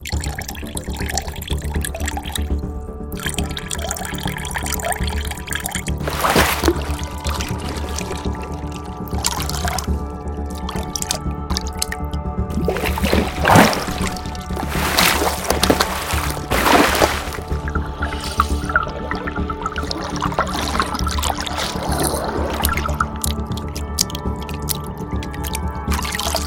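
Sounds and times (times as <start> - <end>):
water: 0.0 - 26.4.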